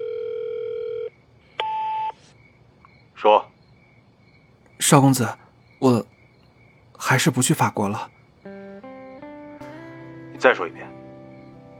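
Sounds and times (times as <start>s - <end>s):
telephone dial tone at home: 0.0s - 2.2s
speech: 3.2s - 3.5s, 4.8s - 6.1s, 7.0s - 8.2s, 10.4s - 10.9s.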